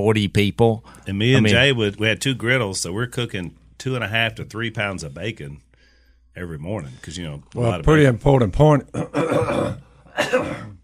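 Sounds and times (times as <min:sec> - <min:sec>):
speech: 0:00.0 - 0:05.6, 0:06.4 - 0:10.7
person coughing roughly: 0:08.9 - 0:10.8.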